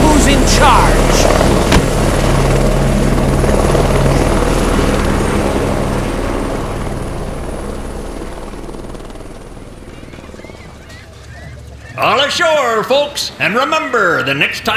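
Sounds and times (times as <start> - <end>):
black helicopter rotor chopping as it takes off: 0.0 - 10.9
speech: 0.3 - 1.0, 12.3 - 14.7.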